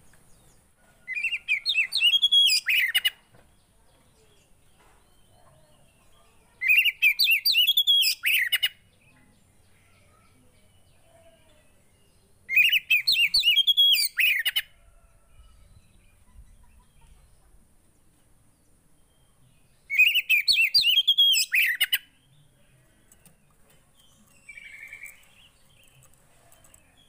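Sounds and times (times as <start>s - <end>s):
Oriental magpie-robin singing: 1.1s - 3.2s, 6.6s - 9.2s, 11.8s - 14.7s, 19.1s - 22.5s, 23.2s - 27.0s.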